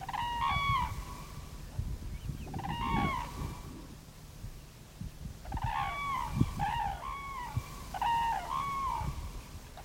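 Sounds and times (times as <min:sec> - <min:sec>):
flock of migrating cranes calling with bugling trumpeting cries: 0:00.0 - 0:01.4, 0:02.4 - 0:03.7, 0:05.4 - 0:09.8.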